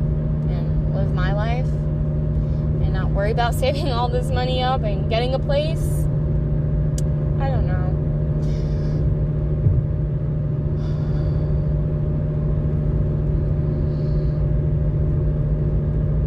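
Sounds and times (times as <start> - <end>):
car engine and road drone while driving: 0.0 - 16.2
speech: 3.2 - 6.0, 7.4 - 7.8.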